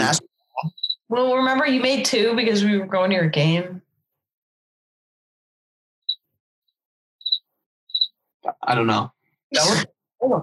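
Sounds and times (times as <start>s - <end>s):
speech: 0.1s - 3.8s, 8.5s - 10.4s
cricket chirping: 0.7s - 1.0s, 7.2s - 8.1s.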